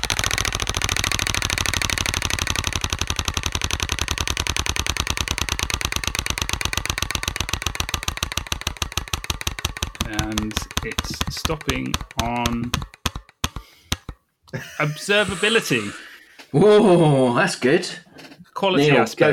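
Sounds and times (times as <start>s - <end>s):
prize wheel pointer clicking in a roulette-style game: 0.0s - 14.2s
speech: 10.8s - 12.9s, 14.5s - 19.3s
laughter: 14.5s - 17.4s.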